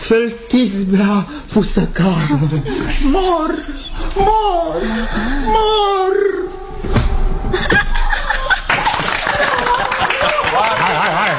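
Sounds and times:
speech: 0.1s - 6.4s
several voices talking and calling out: 1.4s - 11.3s
laughter: 7.5s - 11.3s
audience clapping: 8.3s - 11.3s.

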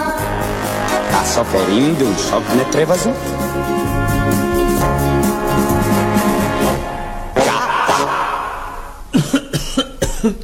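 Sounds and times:
soft music: 0.0s - 7.4s
speech: 1.2s - 5.0s, 10.2s - 10.4s
person coughing: 7.5s - 10.4s.

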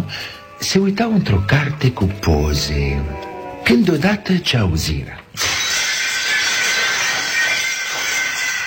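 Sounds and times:
speech: 0.1s - 5.6s
glass shattering: 5.4s - 8.6s
tinkling ringing glass shards: 5.4s - 8.6s.

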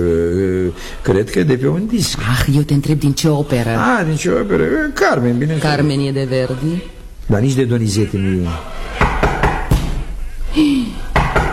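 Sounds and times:
speech: 0.8s - 8.9s, 10.6s - 11.0s
sharp knocks on a door: 9.0s - 10.0s, 11.2s - 11.5s.

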